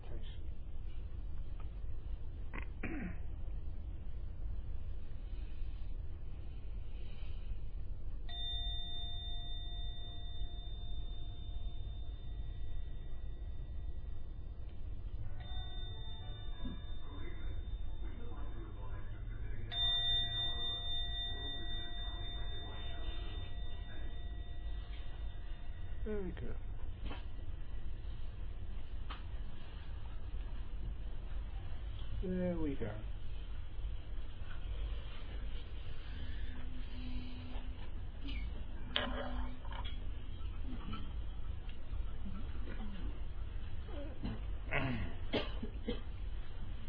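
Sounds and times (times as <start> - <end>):
low hiss: 0.0 - 46.8
gong ringing with a long metallic tone: 8.3 - 27.9
speech: 26.1 - 27.2, 32.2 - 33.1.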